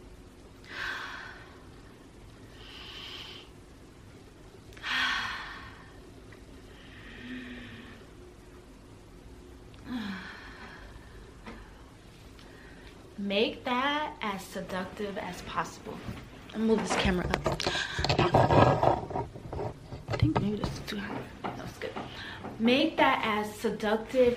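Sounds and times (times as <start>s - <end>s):
slow deliberate breathing during a pelvic-floor breathing exercise: 0.6s - 3.7s, 4.7s - 8.2s, 9.8s - 13.1s
speech: 13.2s - 18.9s, 20.3s - 21.8s, 22.6s - 24.3s.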